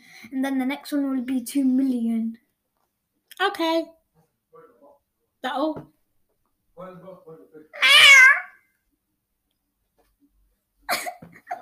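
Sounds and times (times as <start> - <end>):
speech: 0.2 - 2.4, 3.4 - 4.0, 5.4 - 6.0, 6.8 - 8.4
person imitating cat meows: 7.8 - 8.6.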